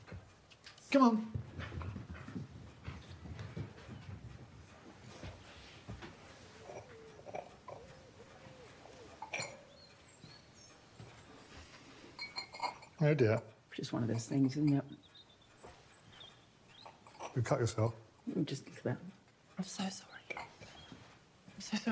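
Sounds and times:
dogs panting and snuffling: 0.0 - 21.9
speech: 0.9 - 1.4, 13.0 - 15.0, 17.4 - 20.2, 21.7 - 21.9
dog whimpering softly: 6.3 - 10.6.

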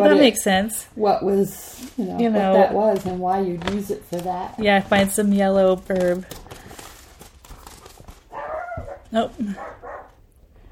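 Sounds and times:
speech: 0.0 - 6.5, 9.1 - 9.8
Chihuahua barking at a delivery driver: 8.3 - 10.1.

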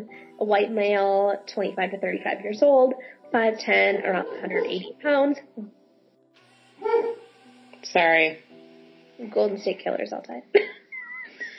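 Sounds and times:
speech: 0.0 - 5.8, 7.8 - 8.4, 9.2 - 10.8
laughter: 4.0 - 4.9
dog barking at the front door: 4.1 - 5.0.

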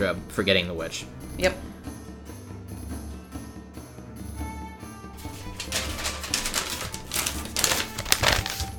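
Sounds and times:
speech: 0.0 - 1.7
paper rustling as someone searches for notes: 5.2 - 8.7.

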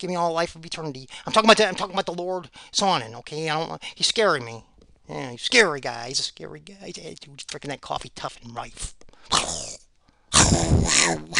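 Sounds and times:
speech: 0.0 - 9.8, 10.5 - 11.3
wolf-like rough snarling growls: 9.3 - 11.3.

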